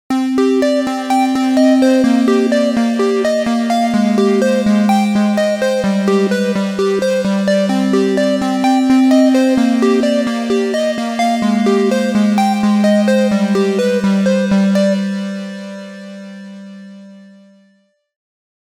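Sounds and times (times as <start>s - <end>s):
mod analog tones: 0.4s - 15.4s.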